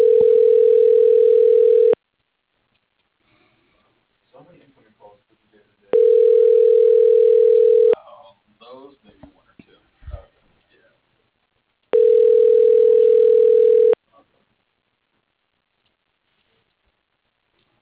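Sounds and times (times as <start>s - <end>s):
telephone ringback tones while a call is transferred to voicemail: 0.0s - 2.0s, 6.0s - 8.0s, 12.0s - 14.0s
faint murmurs and rustles: 2.6s - 6.6s, 7.4s - 11.9s, 14.0s - 17.8s.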